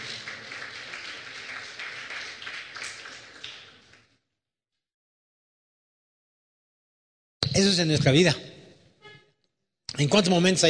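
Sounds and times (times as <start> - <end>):
audience applauding: 0.0 - 4.1
speech: 7.6 - 8.5, 10.0 - 10.6.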